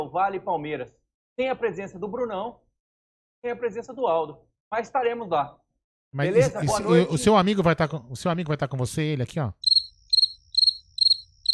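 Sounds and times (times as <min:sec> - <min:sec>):
speech: 0:00.0 - 0:02.6, 0:03.4 - 0:09.7
cricket chirping at night: 0:09.6 - 0:11.5.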